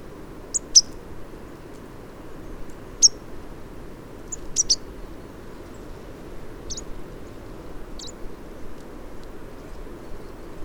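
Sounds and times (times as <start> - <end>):
low steady background hiss: 0.0 - 10.6
marsh tit high sharp calls: 4.3 - 4.8.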